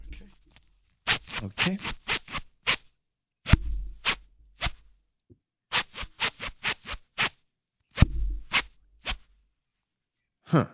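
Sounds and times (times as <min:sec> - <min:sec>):
clothing zipper zipped up and down tapping out a song beat: 0:01.1 - 0:02.9, 0:05.7 - 0:07.4, 0:08.0 - 0:09.3
speech: 0:01.4 - 0:02.0, 0:10.5 - 0:10.7.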